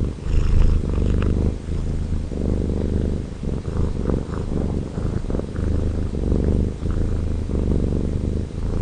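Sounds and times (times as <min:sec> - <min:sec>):
domestic cat purring: 0:00.0 - 0:08.8.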